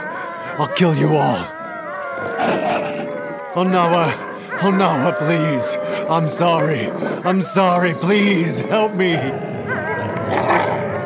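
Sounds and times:
laughter: 0.0 - 1.5, 2.1 - 11.0
several dogs growling and snarling: 0.0 - 11.0
speech: 0.6 - 1.6, 3.6 - 9.5.

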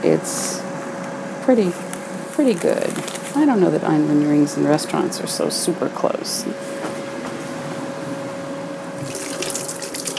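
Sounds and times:
speech: 0.0 - 0.5, 1.5 - 6.9
water running from a tap while washing flour off hands: 9.0 - 10.1.

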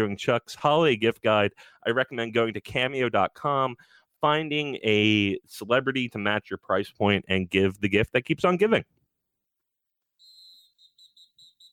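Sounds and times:
speech: 0.0 - 9.0
shrill referee whistle blasts: 10.2 - 11.7.

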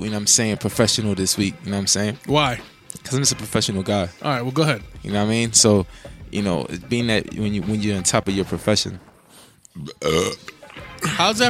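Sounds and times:
speech: 0.0 - 9.1, 9.8 - 11.4
person burping into the microphone: 9.8 - 11.3.

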